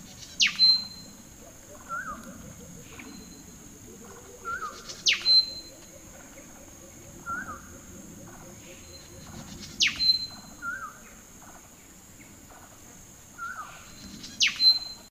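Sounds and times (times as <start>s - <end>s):
black-throated fantail Rhipidura maculipectus calling: 0.0s - 11.4s.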